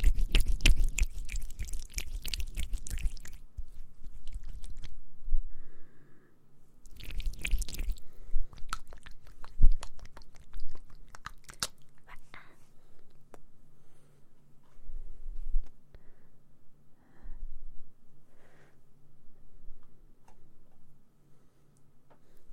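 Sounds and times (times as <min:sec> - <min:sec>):
ASMR wet mouth clicks, smacks and chewing-like noises: 0:00.0 - 0:04.9, 0:06.8 - 0:12.3
low steady hum: 0:00.0 - 0:22.5.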